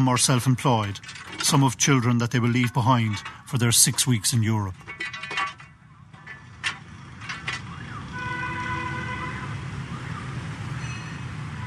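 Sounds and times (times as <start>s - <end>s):
speech: 0.0s - 5.2s
dense street traffic in Vietnam rumbling: 0.0s - 11.6s
sharp clanks and knocks: 0.8s - 7.9s.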